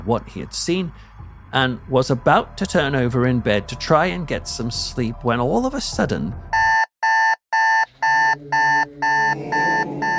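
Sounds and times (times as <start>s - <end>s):
speech: 0.0s - 6.5s
electric alarm clock ringing with shrill pulsed electronic beep: 6.5s - 10.1s.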